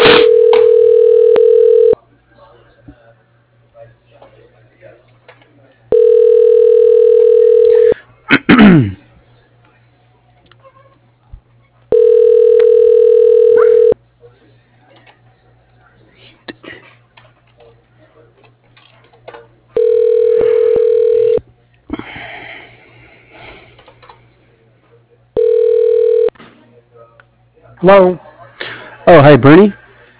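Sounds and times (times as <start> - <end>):
telephone ringing while a call is transferred: 0.2 - 2.0, 5.9 - 8.0, 12.0 - 14.0, 19.8 - 21.4, 25.4 - 26.3
speech: 27.8 - 28.2, 29.1 - 29.8.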